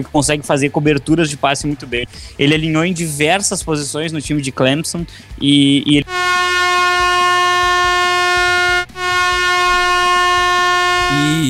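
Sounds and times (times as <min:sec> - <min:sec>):
speech: 0:00.0 - 0:06.8
loud blaring air horn blasts: 0:06.0 - 0:11.4.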